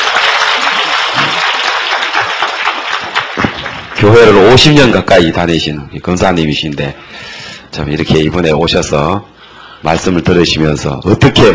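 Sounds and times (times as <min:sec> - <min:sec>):
audience applauding: 0:00.0 - 0:04.6
speech: 0:04.0 - 0:11.5.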